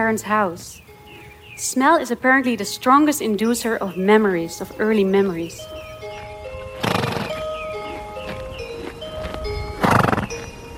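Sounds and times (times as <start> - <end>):
speech: 0.0 - 0.9, 1.6 - 5.9
horse hooves clip-clopping: 4.5 - 10.7
horse snorting: 6.7 - 8.2, 9.8 - 10.7
horse whinnying: 6.8 - 8.0, 9.8 - 10.5.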